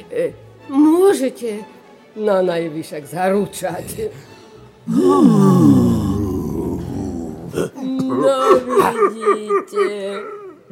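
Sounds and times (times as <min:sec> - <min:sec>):
speech: 0:00.1 - 0:04.3, 0:04.9 - 0:05.8, 0:07.6 - 0:10.7
newborn dragon crying: 0:04.9 - 0:09.4.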